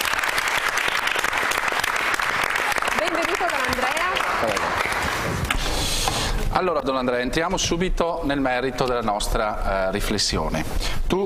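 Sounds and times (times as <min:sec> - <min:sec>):
audience applause welcoming a guest to an event: 0:00.0 - 0:05.7
speech: 0:06.6 - 0:11.2.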